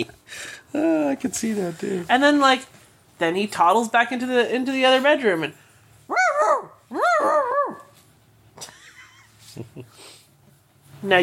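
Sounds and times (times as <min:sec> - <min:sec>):
speech: 0:00.0 - 0:05.6, 0:11.0 - 0:11.2
dog barking: 0:06.1 - 0:07.9.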